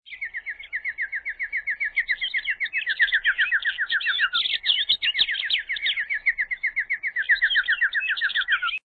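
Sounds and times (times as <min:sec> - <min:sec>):
bird singing rapid trills: 0:00.1 - 0:08.8.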